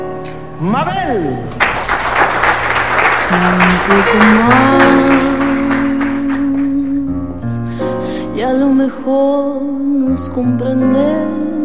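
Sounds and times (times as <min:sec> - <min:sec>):
speech: 0:00.6 - 0:01.7, 0:03.3 - 0:05.5, 0:08.4 - 0:11.6
audience applause at a live show: 0:01.4 - 0:07.1.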